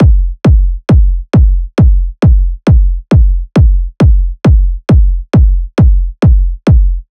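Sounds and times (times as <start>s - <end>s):
techno kick drum loop: 0.0s - 7.0s.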